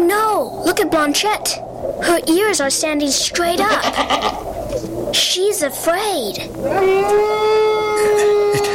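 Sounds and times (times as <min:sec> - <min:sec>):
speech: 0:00.1 - 0:08.3
wolf howling: 0:06.6 - 0:08.7.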